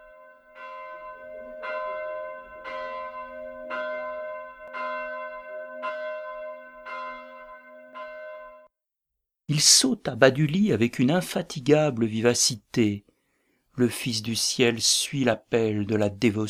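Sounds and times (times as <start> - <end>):
muffled church bell tolling: 0.0 - 8.7
speech: 9.5 - 13.1, 13.8 - 16.4.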